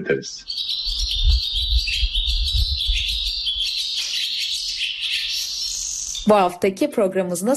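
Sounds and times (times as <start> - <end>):
speech: 0.0 - 0.7, 6.2 - 7.5
barn swallow twittering and chattering: 0.0 - 6.6
low rumble of wind or handling noise: 1.0 - 3.6.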